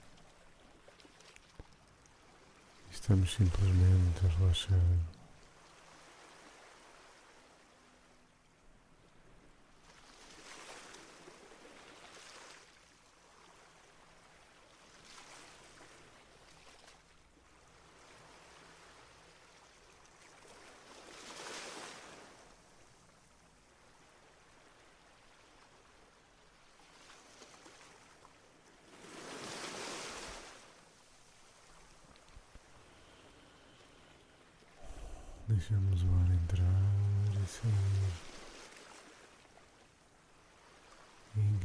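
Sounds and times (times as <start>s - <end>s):
small sea waves lapping on a beach: 0.0s - 41.6s
speech: 3.1s - 5.2s.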